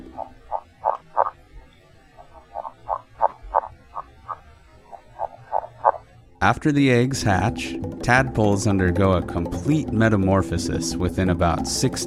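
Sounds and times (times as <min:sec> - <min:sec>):
male northern red-legged frog underwater mating call: 0:00.0 - 0:06.2
speech: 0:06.4 - 0:12.0.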